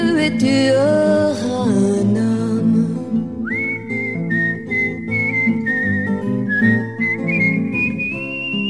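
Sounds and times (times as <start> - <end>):
speech: 0.2 - 2.2
woman whistling a melody: 3.4 - 8.6.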